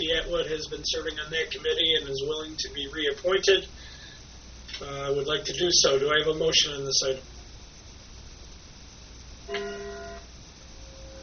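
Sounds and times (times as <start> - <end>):
speech: 0.1 - 3.9, 4.8 - 7.3
clock chiming a single bell-like tone: 9.5 - 10.3.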